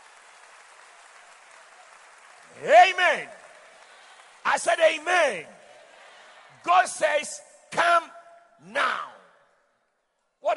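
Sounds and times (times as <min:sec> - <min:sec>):
crowd clapping: 0:00.0 - 0:07.2
speech: 0:02.5 - 0:03.4, 0:04.4 - 0:05.6, 0:06.6 - 0:07.8, 0:08.6 - 0:09.0.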